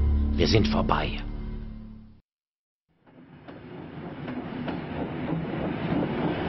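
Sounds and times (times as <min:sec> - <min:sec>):
speech: 0:00.4 - 0:01.3
train rushing along rails: 0:03.0 - 0:06.4.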